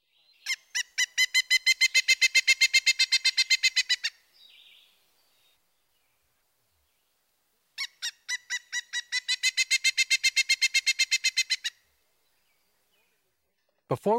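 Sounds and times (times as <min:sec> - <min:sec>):
pileated woodpecker calling: 0:00.4 - 0:05.6, 0:07.8 - 0:13.2
speech: 0:14.0 - 0:14.1.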